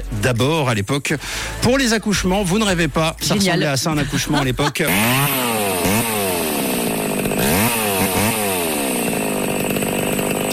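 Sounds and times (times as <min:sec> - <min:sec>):
speech: 0:00.2 - 0:06.0
laughter: 0:03.2 - 0:05.4
chainsaw revving: 0:03.2 - 0:10.5.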